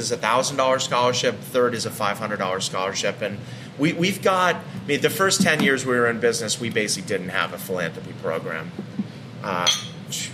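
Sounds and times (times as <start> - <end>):
speech: 0.0 - 10.3
beer glasses clinking in a toast: 9.6 - 10.0.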